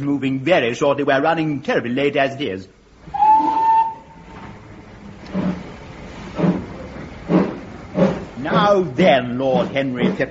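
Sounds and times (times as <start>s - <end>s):
speech: 0.0s - 2.8s, 8.7s - 10.3s
steam train chuffing while rolling along: 3.1s - 4.4s, 5.2s - 10.3s
steam train whistle blast: 3.1s - 4.4s.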